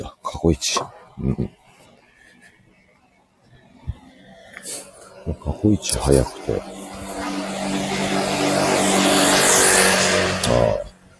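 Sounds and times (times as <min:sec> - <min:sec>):
speech: 0:00.0 - 0:01.6, 0:05.2 - 0:06.8
scooter with small motor engine driving past: 0:04.2 - 0:11.1.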